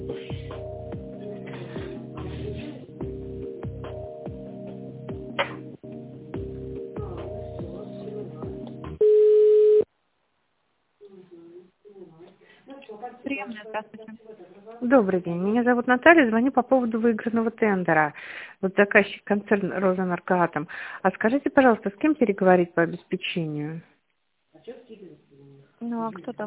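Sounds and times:
loud sustained telephone beep: 9.0 - 9.9
speech: 13.8 - 23.9, 25.8 - 26.4.

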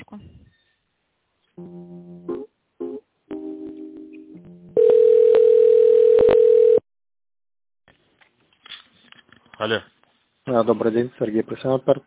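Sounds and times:
telephone dial tone over a phone line while dialing a call: 4.8 - 6.8
speech: 9.6 - 9.9, 10.5 - 12.0.

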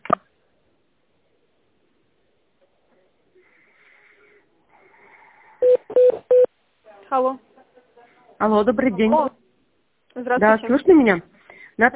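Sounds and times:
short mid-pitched telephone beeps: 5.6 - 6.5
speech: 7.1 - 7.5, 8.4 - 9.3, 10.3 - 11.9.

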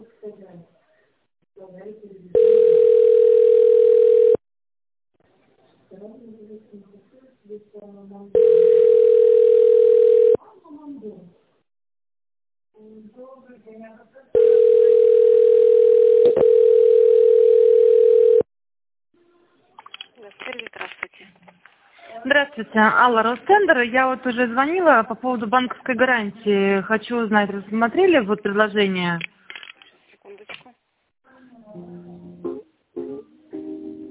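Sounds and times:
telephone ringback tone while calling a company: 2.4 - 4.4, 8.4 - 10.4, 14.4 - 18.5
speech: 22.6 - 29.3.

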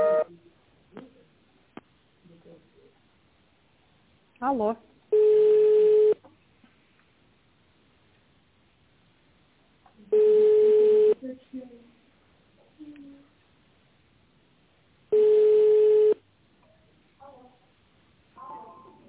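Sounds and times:
faint scattered noises: 0.1 - 19.0
speech: 4.5 - 4.9
telephone line ringback tones while a number is redialed: 5.1 - 6.1, 10.1 - 11.1, 15.1 - 16.2.

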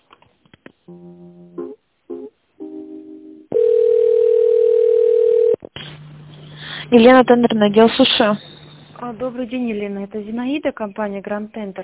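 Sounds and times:
speech: 0.9 - 1.4, 6.9 - 8.5, 9.1 - 11.8
telephone line tones during a call transfer: 3.5 - 5.6.

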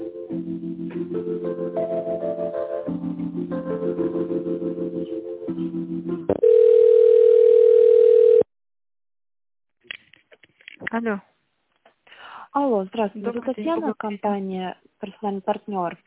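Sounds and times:
telephone tones while a call connects: 6.3 - 8.5
speech: 11.0 - 11.3, 12.7 - 16.0.

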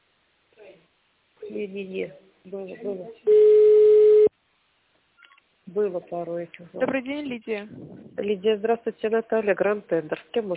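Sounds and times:
speech: 1.5 - 3.6, 5.7 - 10.5
single steady telephone tone: 3.3 - 4.3.

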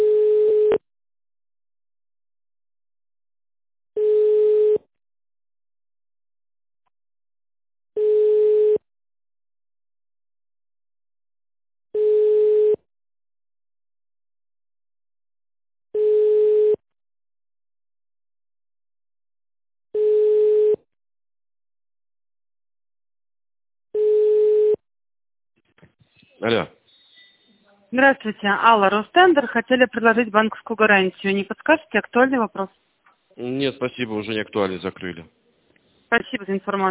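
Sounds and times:
telephone ringback tone while a call is connecting: 0.0 - 0.8, 4.0 - 4.8, 8.0 - 8.8, 12.0 - 12.8, 16.0 - 16.8, 20.0 - 20.8, 24.0 - 24.8
speech: 26.4 - 26.8, 27.9 - 32.8, 33.4 - 35.4, 36.1 - 36.9.

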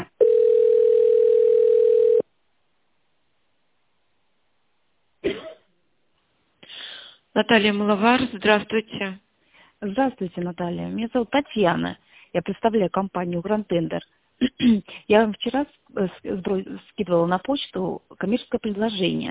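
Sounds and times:
telephone hold melody during a call transfer: 0.2 - 2.2
speech: 7.4 - 19.2.

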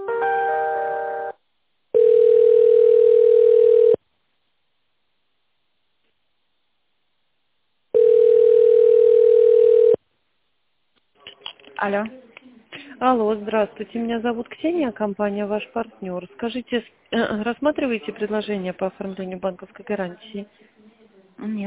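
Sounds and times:
telephone ringback tone while a call is being transferred: 2.0 - 4.0, 8.0 - 10.0
speech: 11.8 - 12.2, 13.0 - 20.8, 21.4 - 21.6.

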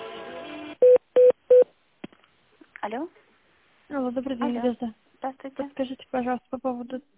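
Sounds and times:
short identical beeps on a phone line: 0.8 - 1.7
speech: 2.9 - 3.2, 3.9 - 7.1.

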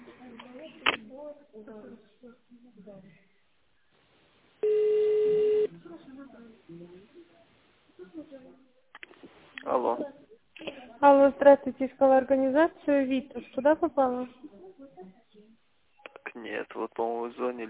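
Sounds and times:
quiet talk on a phone line: 0.0 - 3.9, 4.6 - 17.6
speech: 1.6 - 3.4, 5.7 - 7.4, 8.0 - 15.2, 16.4 - 17.6
touch-tone beep dialing an extension number into a phone menu: 4.6 - 5.7.

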